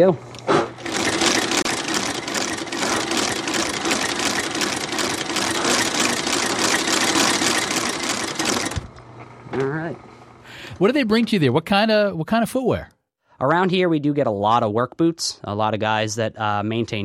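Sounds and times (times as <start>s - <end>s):
speech: 0.0s - 0.3s, 10.8s - 17.0s
sewing machine motor running in a shoe repair shop with presser foot lifted: 0.8s - 9.0s.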